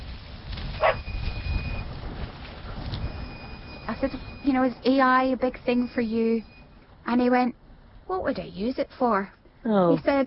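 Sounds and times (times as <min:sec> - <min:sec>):
steady low rumble outdoors: 0:00.0 - 0:10.2
dog barking on a farm: 0:00.8 - 0:01.0
speech: 0:04.0 - 0:06.5, 0:07.1 - 0:10.2.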